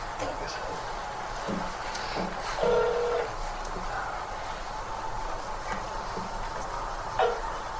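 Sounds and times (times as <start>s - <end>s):
low room hum: 0.0s - 7.7s
long steady tone: 2.6s - 4.3s, 7.2s - 7.7s.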